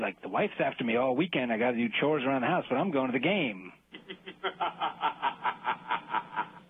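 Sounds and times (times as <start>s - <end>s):
speech: 0.0s - 6.1s
canned laugh sound effect: 3.9s - 6.6s.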